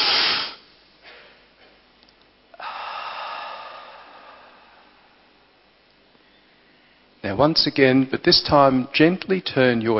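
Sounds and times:
deep inhale through the nose: 0.0s - 0.6s, 2.6s - 5.2s
soft steady hiss: 0.0s - 9.9s
speech: 7.2s - 9.9s.

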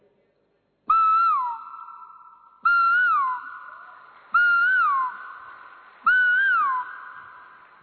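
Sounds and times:
Asian koel calling: 0.9s - 7.6s.

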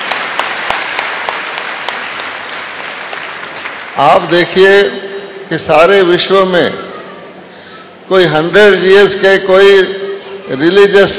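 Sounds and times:
crowd applauding with many hands clapping: 0.0s - 5.0s
speech: 4.0s - 6.8s, 8.1s - 11.1s.

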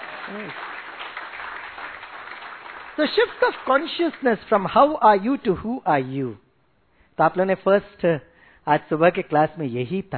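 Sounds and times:
audience clapping in a self-empowerment class: 0.0s - 4.7s
speech: 0.3s - 0.7s, 3.0s - 6.4s, 7.2s - 10.1s.

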